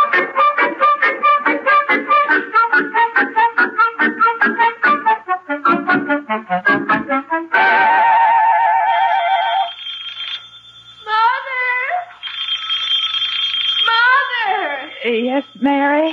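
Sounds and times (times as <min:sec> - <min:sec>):
steady high-pitched tone: 0:00.0 - 0:16.1
telephone ringing in warbling trilling bursts: 0:08.8 - 0:11.5, 0:12.1 - 0:16.1.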